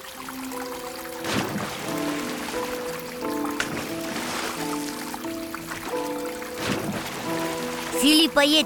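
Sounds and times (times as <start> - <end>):
soft sustained musical tones: 0.0 - 8.6
water sloshing and splashing as someone wades in: 0.0 - 8.6
speech: 8.0 - 8.6.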